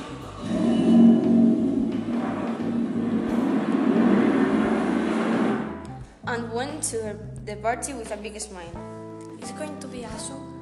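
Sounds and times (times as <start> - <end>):
road noise: 0.0 - 6.1
car engine rumble: 1.2 - 6.0
speech: 6.8 - 10.5.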